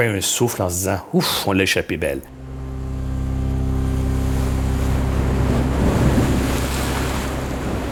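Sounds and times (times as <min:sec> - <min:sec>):
speech: 0:00.0 - 0:02.5
small motorboat engine droning: 0:02.3 - 0:07.9
choppy sea water rushing and waves splashing: 0:04.1 - 0:07.9.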